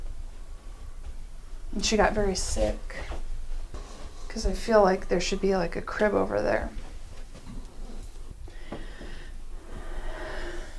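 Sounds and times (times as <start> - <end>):
noisy background: 0.0 - 10.7
speech: 1.8 - 3.2, 4.4 - 6.8
strained labored breathing with raspy snorting and wheezing: 7.8 - 10.7.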